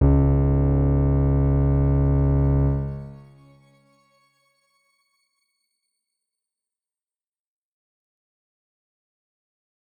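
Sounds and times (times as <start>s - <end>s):
soft grain note: 0.0s - 5.4s.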